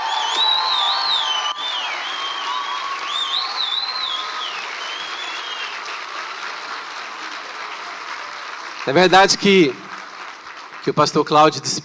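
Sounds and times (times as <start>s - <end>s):
high wavering whistles from the audience: 0.0s - 5.9s
large audience applauding to welcome a pastor: 0.0s - 11.8s
speech: 8.9s - 9.8s, 10.8s - 11.8s.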